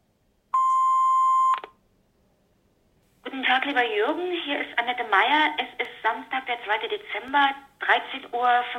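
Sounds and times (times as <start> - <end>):
answering machine beep before a message: 0.6 - 1.8
speech: 3.6 - 8.7.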